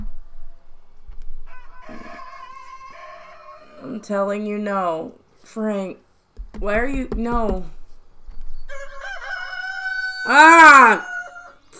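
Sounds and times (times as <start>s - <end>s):
rooster crowing: 1.4s - 3.8s, 8.6s - 11.7s
speech: 3.8s - 6.0s, 6.6s - 7.8s, 10.3s - 11.1s.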